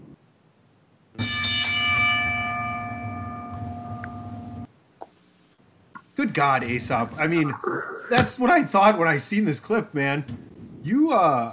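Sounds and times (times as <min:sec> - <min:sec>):
bell strike with bright metallic tone: 0:01.2 - 0:04.7
speech: 0:06.2 - 0:11.5.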